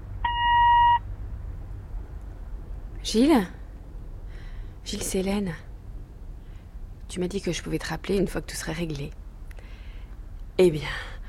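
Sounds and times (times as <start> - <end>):
faint low hum: 0.0 - 11.2
voicemail greeting electronic beep tone: 0.2 - 1.0
speech: 3.0 - 3.6, 4.8 - 5.7, 7.1 - 9.2, 10.6 - 11.1.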